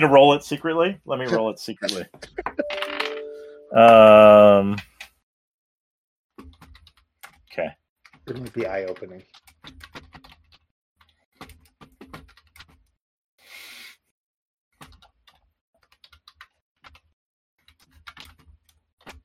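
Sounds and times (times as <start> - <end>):
speech: 0.0 - 2.8, 3.7 - 4.9, 7.6 - 10.0
computer keyboard typing: 6.4 - 12.9, 14.8 - 19.2.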